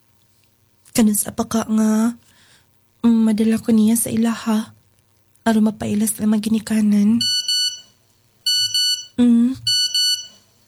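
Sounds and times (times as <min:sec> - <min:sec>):
speech: 0:01.0 - 0:02.3, 0:03.0 - 0:04.8, 0:05.5 - 0:07.4, 0:09.2 - 0:09.7
cellphone ringing with a repeating electronic ringtone: 0:07.2 - 0:07.8, 0:08.5 - 0:10.4.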